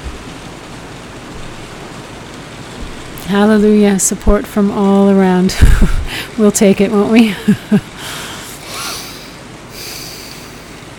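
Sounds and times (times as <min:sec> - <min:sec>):
heavy rain pouring: 0:00.0 - 0:10.9
speech: 0:03.3 - 0:08.2.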